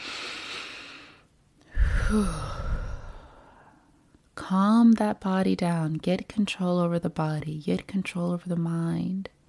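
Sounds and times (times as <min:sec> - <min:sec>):
deep inhaling breath: 0:00.0 - 0:03.9
speech: 0:02.1 - 0:02.5, 0:04.5 - 0:09.4.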